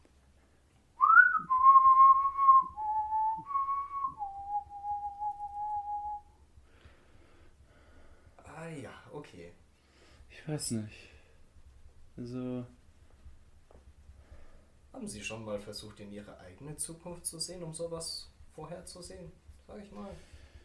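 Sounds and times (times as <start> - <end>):
person whistling a slow eerie melody: 1.0 - 6.4
speech: 10.4 - 11.1, 12.2 - 12.8, 15.0 - 20.3.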